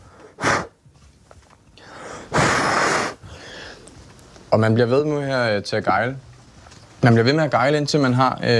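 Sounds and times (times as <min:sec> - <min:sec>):
heavy panting breaths: 0:01.8 - 0:04.0
speech: 0:04.5 - 0:06.3, 0:07.0 - 0:08.5.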